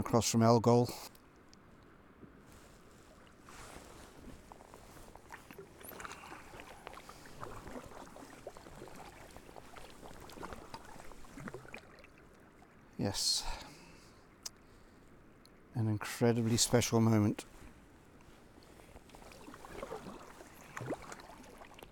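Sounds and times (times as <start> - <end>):
wind: 0.0 - 21.9
speech: 0.1 - 1.1, 13.0 - 13.6, 15.8 - 17.5
choppy water noise: 1.1 - 13.9, 16.5 - 21.9
paddle strokes splashing from a small boat on choppy water: 2.4 - 12.8, 17.6 - 21.9.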